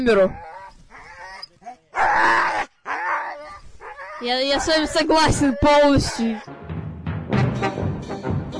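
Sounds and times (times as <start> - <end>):
speech: 0.0 - 0.5, 4.2 - 6.6
sled dog barking and yelping with whining howl-like tones: 0.1 - 6.5.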